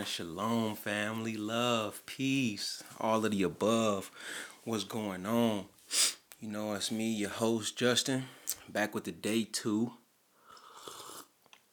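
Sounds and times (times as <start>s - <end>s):
speech: 0.0s - 10.0s
slurping sip of tea from a mug from Prague: 10.5s - 11.4s.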